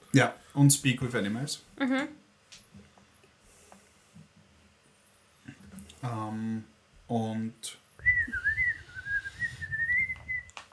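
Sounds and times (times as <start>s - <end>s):
speech: 0.1s - 2.2s, 6.0s - 7.8s
person whistling to a bird: 8.0s - 10.6s.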